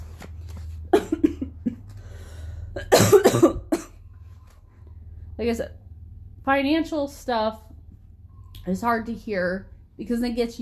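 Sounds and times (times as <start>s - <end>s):
person coughing to clear phlegm during a mucus cold: 0.9s - 1.9s, 2.8s - 4.0s
soft breathing: 1.9s - 2.8s
speech: 5.4s - 5.8s, 6.4s - 7.7s, 8.7s - 10.6s.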